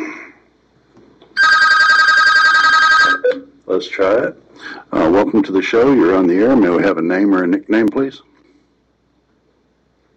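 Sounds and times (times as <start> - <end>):
telephone ringing with a buzzy electronic trill: 1.4 - 3.3
speech: 3.8 - 8.3.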